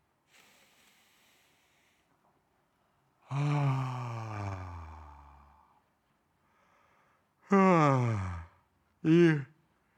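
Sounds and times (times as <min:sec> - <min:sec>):
faint breath in: 0:00.3 - 0:02.1, 0:06.4 - 0:07.3
person sighing out through the mouth: 0:03.3 - 0:05.6, 0:07.5 - 0:08.5, 0:09.1 - 0:09.5
speech: 0:09.0 - 0:09.5.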